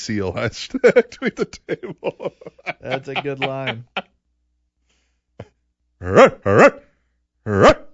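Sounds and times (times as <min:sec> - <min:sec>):
speech: 0:00.0 - 0:04.1, 0:06.0 - 0:07.8
laughter: 0:00.6 - 0:04.1
dog barking: 0:06.1 - 0:06.8.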